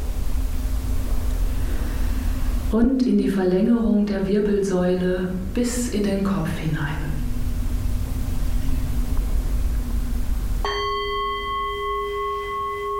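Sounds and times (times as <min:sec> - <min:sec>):
low rumbling background: 0:00.0 - 0:12.9
speech: 0:02.7 - 0:07.1
meditation gong being struck: 0:10.6 - 0:12.9.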